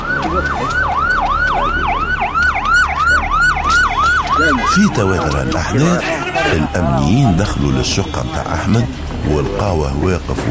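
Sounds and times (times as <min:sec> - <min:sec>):
police siren wailing: 0:00.0 - 0:09.4
low rumble of traffic or engine noise: 0:00.0 - 0:10.4
speech: 0:04.4 - 0:10.4.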